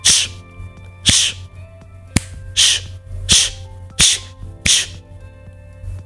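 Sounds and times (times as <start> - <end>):
hissing through teeth and tongue to calm a dog: 0.0 - 1.5, 2.6 - 5.0.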